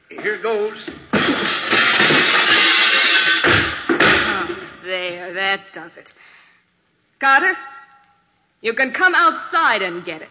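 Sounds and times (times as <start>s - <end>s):
speech: 0.2s - 1.0s, 4.9s - 6.3s, 7.2s - 7.7s, 8.6s - 10.2s
glass door panel shattering from a thrown chair: 1.1s - 4.4s.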